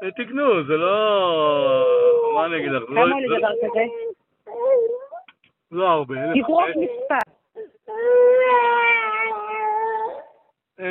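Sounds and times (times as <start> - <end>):
speech: 0.0 - 4.1, 5.7 - 7.2
two-year-old boy wailing cry: 3.0 - 5.3, 7.6 - 10.4.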